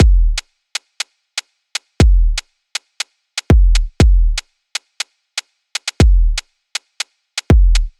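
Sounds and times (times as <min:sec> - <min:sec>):
bling drum kit: 0:00.0 - 0:00.4, 0:02.0 - 0:02.4, 0:03.4 - 0:04.4, 0:05.8 - 0:06.4, 0:07.4 - 0:07.9.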